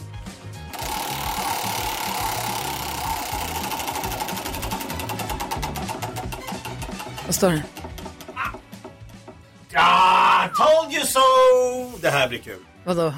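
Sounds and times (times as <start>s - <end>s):
spinning prize wheel ticking: 0.8s - 9.2s
speech: 7.3s - 7.8s, 10.6s - 13.1s.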